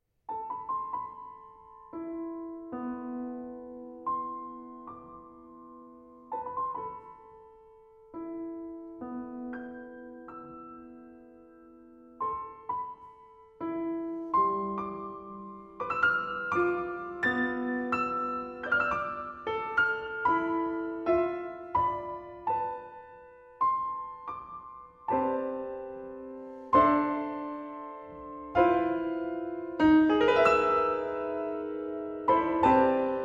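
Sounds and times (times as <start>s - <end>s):
solo piano: 0.3s - 33.2s.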